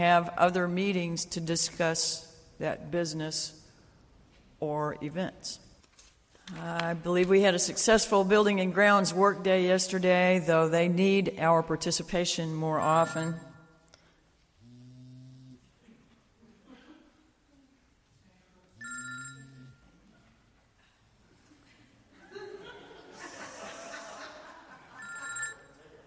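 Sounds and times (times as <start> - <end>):
speech: 0.0 - 3.6, 4.6 - 5.7, 6.5 - 13.5
mobile phone ringing during a church service: 18.8 - 19.8, 25.0 - 25.8
people chuckling: 20.0 - 26.0.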